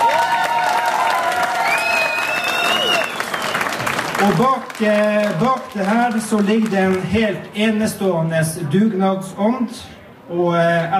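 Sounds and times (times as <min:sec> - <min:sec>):
large audience applauding: 0:00.0 - 0:07.2
speech: 0:04.2 - 0:10.9.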